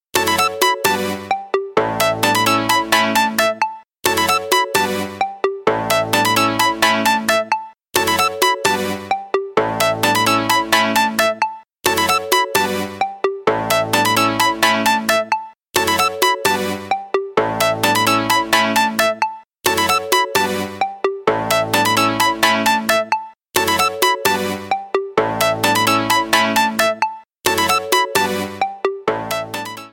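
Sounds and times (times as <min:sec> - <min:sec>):
ringtone: 0:00.2 - 0:29.9.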